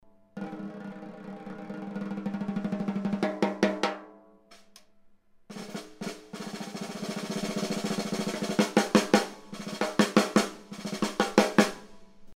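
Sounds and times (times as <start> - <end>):
big band snare drum: 0.4 - 4.1, 5.5 - 12.0.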